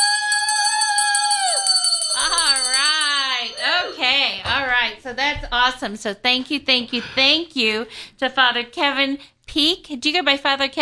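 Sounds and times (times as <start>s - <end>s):
people cheering and calling out: 0.0s - 4.5s
bell ringing with sustained shimmering tone: 0.0s - 4.7s
speech: 5.1s - 10.8s.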